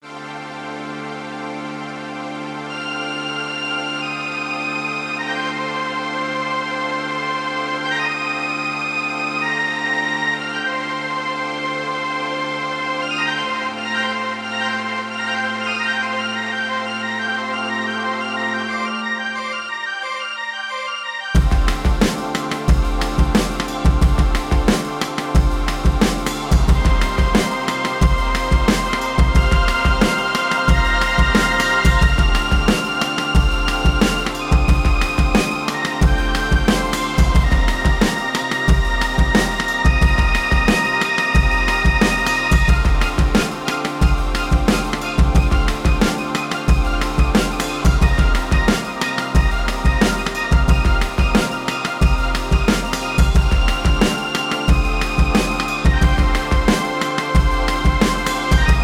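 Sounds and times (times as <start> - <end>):
Solina synthesizer: 0.0 - 58.8.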